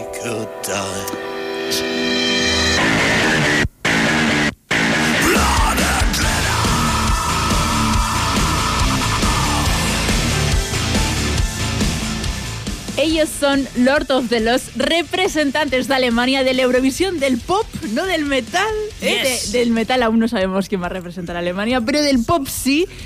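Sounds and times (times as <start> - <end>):
speech: 0.2 - 1.9, 13.4 - 23.0
gothic industrial dance music with pounding electronic beat, heavy synths and vocals: 2.4 - 19.8.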